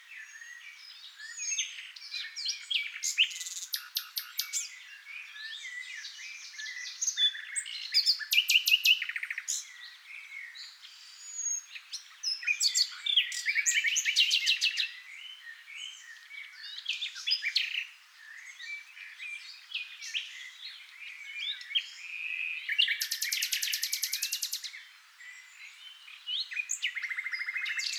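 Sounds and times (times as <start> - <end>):
Common nightingale song: 0.0 - 27.9.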